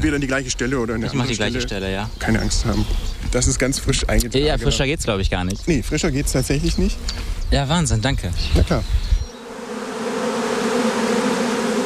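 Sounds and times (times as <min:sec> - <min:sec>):
many honey bees buzzing around their hives: 0:00.0 - 0:03.2, 0:08.8 - 0:11.8
speech: 0:00.0 - 0:09.2.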